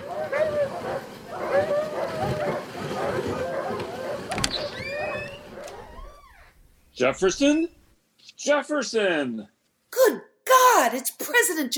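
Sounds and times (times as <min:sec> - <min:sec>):
several dogs pulling a dog sled barking and yipping excitedly: 0:00.0 - 0:06.6
steady mechanical creaking and rattling of a dog sled: 0:02.2 - 0:07.9
speech: 0:07.0 - 0:11.7.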